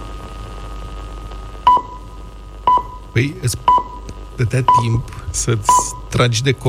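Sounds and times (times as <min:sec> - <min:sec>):
faint hiss: 0:00.0 - 0:06.6
radio exact-time signal beeps from Bucharest Romania: 0:01.6 - 0:02.1, 0:02.7 - 0:05.0, 0:05.6 - 0:06.6
speech: 0:03.2 - 0:06.6.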